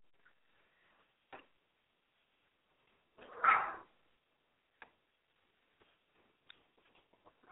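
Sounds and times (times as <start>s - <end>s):
excited chihuahuas barking: 3.2s - 3.9s
faint scrabbling clicks: 3.2s - 3.9s.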